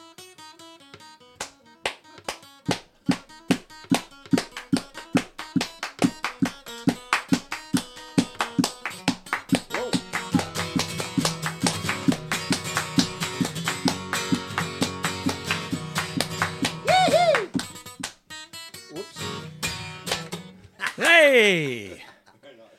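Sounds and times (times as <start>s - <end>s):
live instrumental transition music: 0.8s - 20.6s
rhythmic tapping beats: 2.2s - 18.2s
sliding vocal sound: 20.8s - 22.1s.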